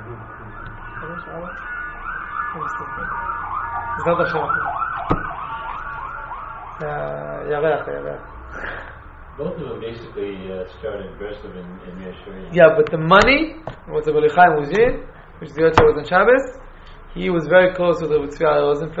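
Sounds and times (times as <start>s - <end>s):
ambulance siren wailing and yelping as it passes: 0.0s - 8.4s
speech: 1.2s - 1.7s, 2.5s - 5.3s, 6.8s - 16.6s, 17.2s - 18.9s.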